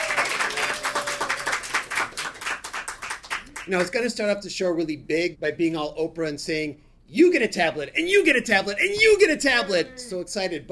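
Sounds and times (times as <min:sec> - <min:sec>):
faint voices or cheers: 0:00.0 - 0:01.6
live audience crowd applauding: 0:00.0 - 0:03.8
speech: 0:03.7 - 0:10.6.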